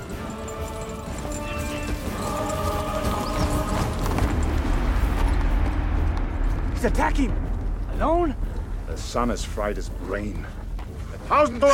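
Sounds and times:
several horses galloping across a vast flat expanse of sand: 0.0s - 11.7s
speech: 6.8s - 7.4s, 8.0s - 8.4s, 9.0s - 10.6s, 11.3s - 11.7s.

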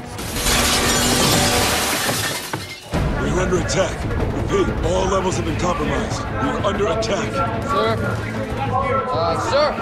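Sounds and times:
glass window shattering as a man falls through it: 0.2s - 3.0s
speech: 3.4s - 9.8s.

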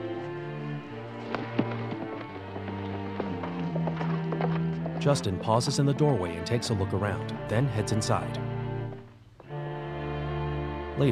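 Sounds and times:
horse hooves clip-clopping as a horse rides away: 0.0s - 9.6s
sustained tonal music bed: 0.0s - 11.0s
speech: 5.0s - 8.6s.

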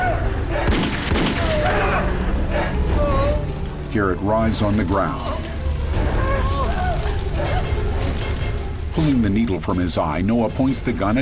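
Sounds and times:
dense noisy background: 0.0s - 11.2s
gunshots fired wildly during a struggle: 0.6s - 1.8s
speech: 3.9s - 5.3s, 9.0s - 11.2s.

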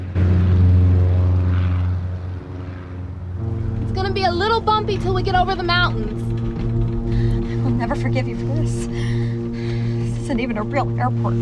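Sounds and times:
small propeller plane engine roaring while taking off down a runway: 0.0s - 11.4s
speech: 4.2s - 6.2s, 7.8s - 9.4s, 10.3s - 11.4s.

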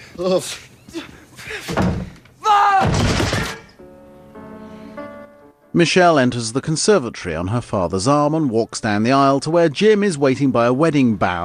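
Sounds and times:
speech: 0.1s - 2.0s, 5.8s - 11.4s
door slamming shut: 1.6s - 2.2s, 2.8s - 3.8s
people shouting frantically: 2.4s - 3.6s
steady sustained musical tone: 3.8s - 6.6s.

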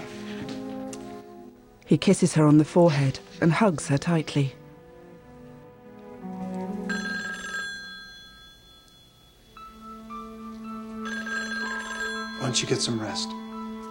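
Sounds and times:
speech: 1.9s - 4.6s, 12.5s - 13.4s
telephone ringing: 6.8s - 13.8s.

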